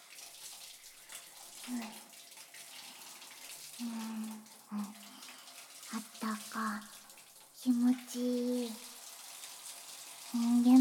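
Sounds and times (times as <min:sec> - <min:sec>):
hot water running from a tap: 0:00.0 - 0:10.8
speech: 0:01.7 - 0:02.1, 0:03.8 - 0:04.9, 0:07.8 - 0:08.5.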